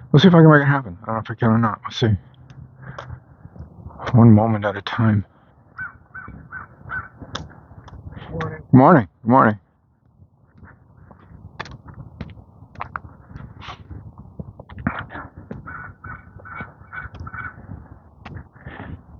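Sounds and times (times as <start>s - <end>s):
speech: 0.1s - 2.3s, 4.0s - 5.3s, 8.4s - 9.6s
crow cawing: 5.8s - 7.3s, 15.6s - 17.7s.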